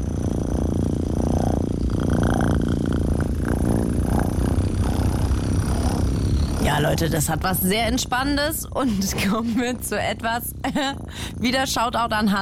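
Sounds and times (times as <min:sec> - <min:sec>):
cat purring: 0:00.0 - 0:12.3
speech: 0:06.8 - 0:12.3.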